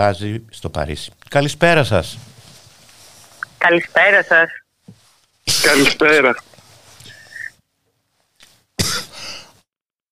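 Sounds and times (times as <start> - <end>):
speech: 0.0 - 2.3, 3.6 - 4.6, 5.6 - 6.5
rumbling throat clearing: 8.8 - 9.2
person coughing: 8.8 - 9.4.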